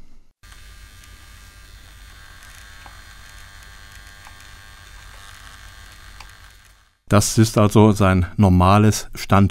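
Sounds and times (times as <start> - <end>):
faint clicks: 0.4 - 6.9
humanoid robot's motors humming while standing idle: 0.4 - 7.1
speech: 7.1 - 9.5.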